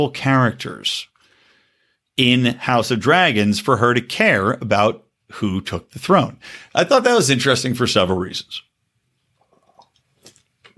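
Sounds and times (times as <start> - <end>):
speech: 0.0 - 1.1, 2.2 - 8.7
beer sipping: 9.2 - 10.7
slurping: 9.2 - 10.7
swallowing: 9.3 - 10.7.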